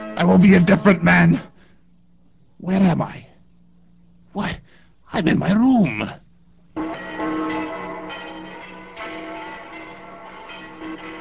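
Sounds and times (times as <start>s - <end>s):
speech: 0.2s - 1.5s, 2.6s - 3.3s, 4.4s - 6.2s
peal of bells ringing: 6.8s - 11.1s.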